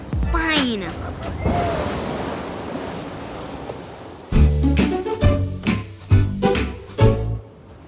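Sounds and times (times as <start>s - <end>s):
steady rush of moving water on a log flume ride: 0.3s - 7.8s
heavy sloshing surges and splashes: 1.0s - 4.3s.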